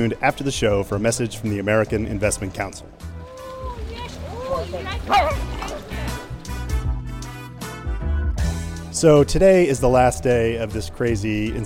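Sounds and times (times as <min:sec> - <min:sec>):
speech: 0:00.0 - 0:03.1, 0:04.6 - 0:05.6, 0:09.0 - 0:11.6
voices murmuring at a global conference in Beverly Hills, California: 0:00.0 - 0:06.8
dog barking in short repeated yips: 0:05.1 - 0:05.8.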